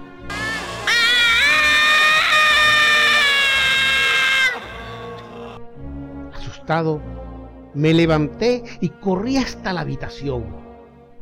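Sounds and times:
person screaming in terror: 0.3 - 5.6
speech: 6.7 - 10.7.

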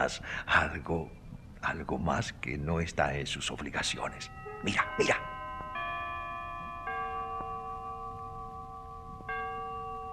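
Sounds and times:
speech: 0.0 - 5.3
church bells chiming the hour: 3.2 - 10.1.

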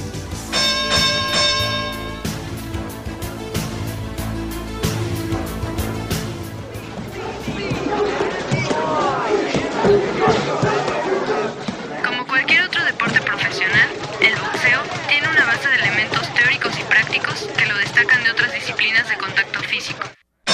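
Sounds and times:
boxing ring bell clanging: 0.5 - 2.3
crowd murmuring: 1.9 - 20.1.

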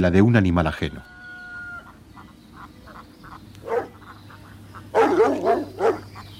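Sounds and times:
speech: 0.0 - 1.1
faint rhythmic croaking: 1.6 - 6.3
dog barking: 3.6 - 4.0, 4.9 - 6.1.

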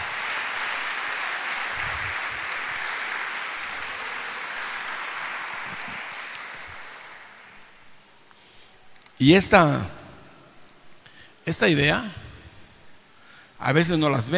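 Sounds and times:
audience applauding: 0.0 - 7.9
speech: 9.2 - 10.0, 11.5 - 12.2, 13.6 - 14.3.

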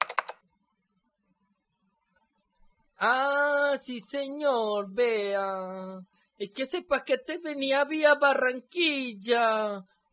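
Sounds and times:
typing on a computer keyboard: 0.0 - 0.4
speech: 3.0 - 10.1.

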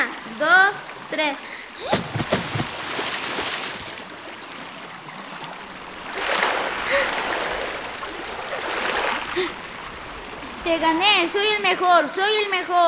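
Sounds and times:
speech: 0.3 - 2.2, 10.7 - 12.8
flowing river rushing: 1.7 - 11.0.

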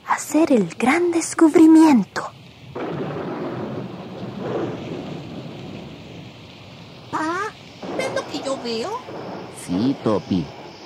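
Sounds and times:
steady rain pouring: 0.0 - 10.8
low rumble of thunder: 0.2 - 10.8
speech: 0.3 - 2.9, 8.6 - 10.6.

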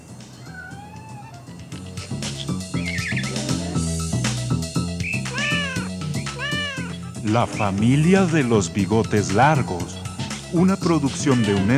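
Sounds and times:
cat meowing: 0.3 - 1.6, 5.1 - 7.1, 11.1 - 11.7
steady rhythmic musical backing: 1.5 - 11.7
speech: 7.3 - 11.7.

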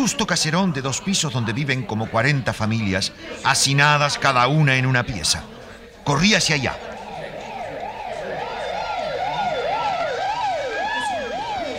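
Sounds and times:
speech: 0.0 - 6.9
passing ambulance siren wailing: 6.4 - 11.7.

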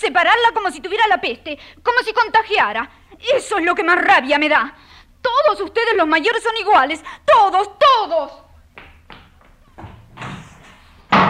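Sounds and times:
speech: 0.0 - 8.4
door slamming shut: 10.2 - 11.2.

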